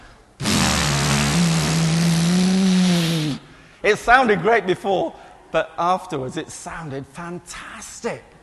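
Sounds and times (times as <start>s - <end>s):
raw car engine with no exhaust revving: 0.4s - 3.4s
speech: 3.8s - 8.3s.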